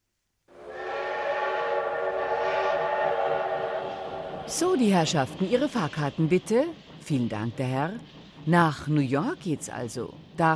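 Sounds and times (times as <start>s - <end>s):
train whistle blaring: 0.5s - 5.6s
running train rumbling: 0.5s - 10.5s
speech: 4.5s - 10.5s.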